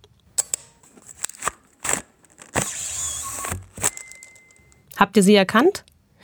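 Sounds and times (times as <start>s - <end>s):
mechanical clicks and snaps from an old Polaroid 320 instant camera: 0.4s - 4.8s
speech: 5.0s - 6.2s.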